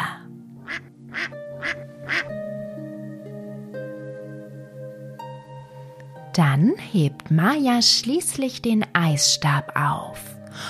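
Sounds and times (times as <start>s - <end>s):
soft sustained music: 0.0s - 10.6s
duck quacking: 0.6s - 2.3s
speech: 6.4s - 10.6s.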